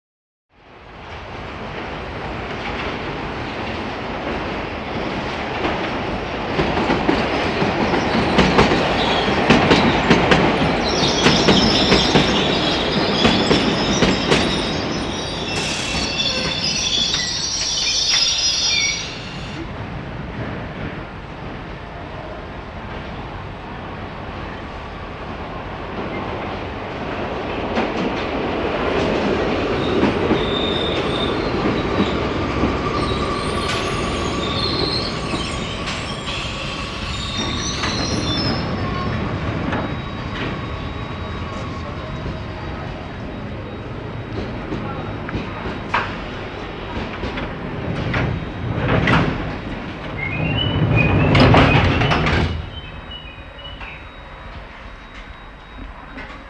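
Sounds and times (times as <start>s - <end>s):
underground train arriving, stopping and departing: 0.6s - 56.4s.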